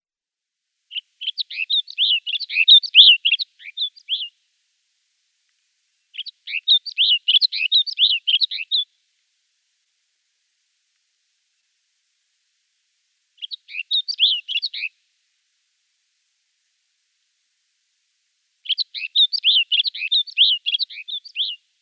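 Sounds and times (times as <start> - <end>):
Snow Bunting song: 0.9 - 4.4, 6.1 - 9.0, 13.4 - 15.0, 18.6 - 21.6.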